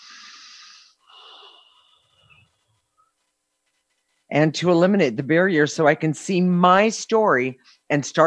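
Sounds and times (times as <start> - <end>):
person breathing during a guided emotional-clearing exercise: 0.0 - 2.8
speech: 4.3 - 8.2.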